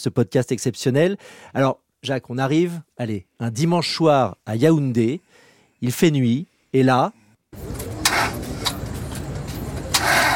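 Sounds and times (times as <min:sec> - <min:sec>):
speech: 0:00.0 - 0:08.4
car engine cranking and sputtering, failing to start in Yaoundé, Cameroon: 0:07.6 - 0:10.3.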